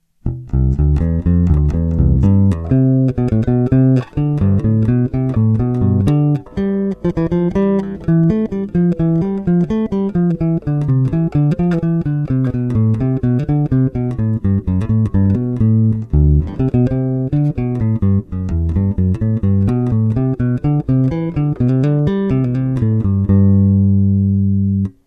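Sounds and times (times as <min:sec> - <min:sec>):
bass bridge: 0:00.0 - 0:25.0.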